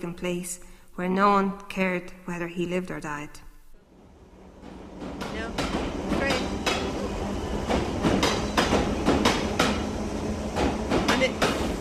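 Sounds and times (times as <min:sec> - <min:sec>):
speech: 0:00.0 - 0:03.5
underground train rumbling along the rails: 0:03.9 - 0:11.7
underground train wheels clacking on rails: 0:04.2 - 0:11.7.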